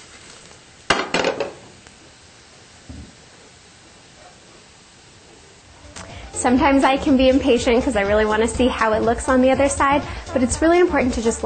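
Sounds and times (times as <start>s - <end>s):
frying pan with oil clanking on a stove: 0.9s - 1.6s
speech: 6.4s - 11.4s.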